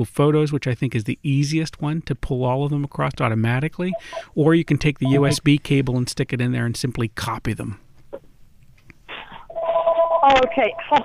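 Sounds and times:
speech: 0.0 - 8.2, 10.3 - 11.0
electronic telephone ringing: 3.9 - 4.3, 5.0 - 5.4, 9.5 - 11.0.

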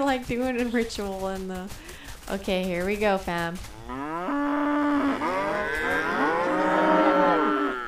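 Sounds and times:
speech: 0.0 - 4.0
several cows mooing: 3.7 - 7.8.

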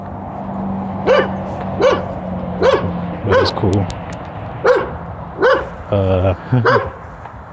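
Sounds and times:
dog barking in short yaps: 1.0 - 3.6, 4.6 - 5.8, 6.6 - 7.0
speech: 3.4 - 4.0, 5.9 - 6.9
laughter: 5.8 - 7.0.

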